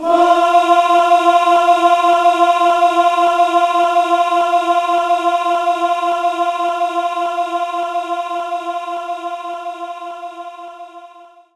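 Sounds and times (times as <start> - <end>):
concert choir singing F4: 0.0 - 11.5.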